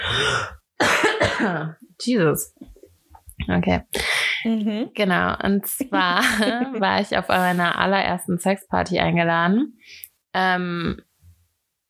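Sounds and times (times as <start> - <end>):
person coughing: 0.0 - 1.7
speech: 1.4 - 2.6, 3.4 - 11.1
laughter: 6.0 - 7.4.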